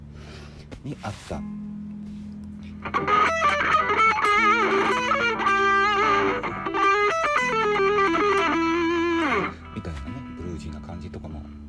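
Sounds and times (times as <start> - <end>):
speech: 0.8 - 1.7, 2.8 - 3.9
distorted electric guitar playing a fast phrase: 2.6 - 10.4.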